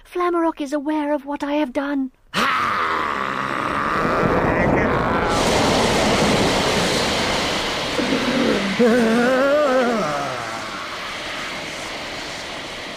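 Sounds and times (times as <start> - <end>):
speech: 0.1 - 2.8, 8.8 - 9.2
low wavering groan: 2.4 - 7.1, 8.0 - 11.0
fountain water gushing upward: 5.3 - 11.4.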